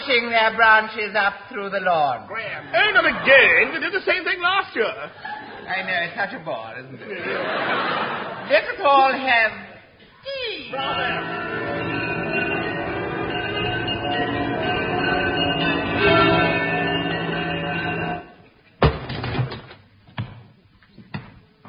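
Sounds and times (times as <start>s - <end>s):
speech: 0.1s - 11.5s
laughter: 5.0s - 5.9s, 6.9s - 9.2s
bells pealing: 10.7s - 18.4s
sharp knocks and thuds: 18.8s - 20.4s.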